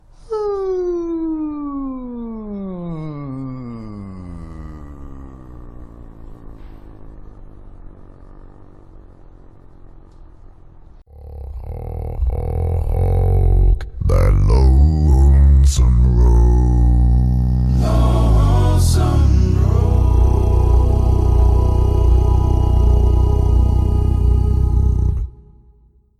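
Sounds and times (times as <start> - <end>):
deep voice: 0.3 - 6.4, 11.1 - 25.6.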